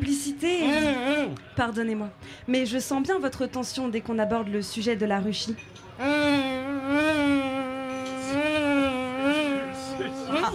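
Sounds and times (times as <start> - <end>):
speech: 0.4 - 0.7, 1.3 - 6.4
human voice imitating a bee with a nasal buzzing hum: 6.0 - 10.5.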